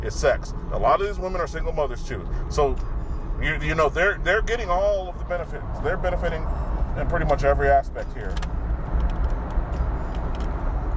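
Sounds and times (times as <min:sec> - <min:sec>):
speech: 0:00.0 - 0:08.5
car cabin road and engine drone while driving in traffic: 0:00.0 - 0:10.9
faint rattles and clicks in a car cabin: 0:08.0 - 0:10.6.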